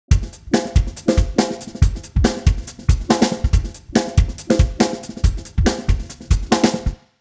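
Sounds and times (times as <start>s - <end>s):
drums: 0.0s - 7.1s.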